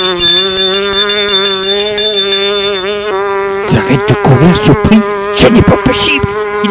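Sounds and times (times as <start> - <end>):
front door doorbell ringing: 0.0 - 3.7
speech: 3.9 - 6.6.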